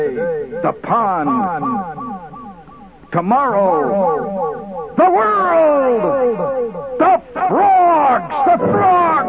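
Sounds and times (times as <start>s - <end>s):
movie advertisement voice with echo-chamber reverb: 0.0s - 9.2s
speech: 0.6s - 2.1s, 3.1s - 9.2s.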